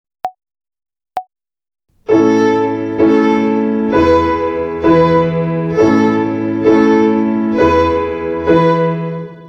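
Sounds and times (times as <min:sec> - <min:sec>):
violin finger exercise on the A string in triple time: 0:01.9 - 0:09.4.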